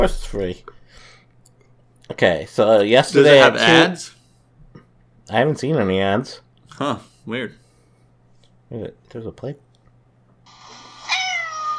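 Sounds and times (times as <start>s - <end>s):
speech: 0.0s - 1.1s, 2.1s - 4.2s, 5.3s - 7.6s, 8.7s - 9.6s
faint steady hum: 0.0s - 11.7s
cat meowing: 10.5s - 11.7s.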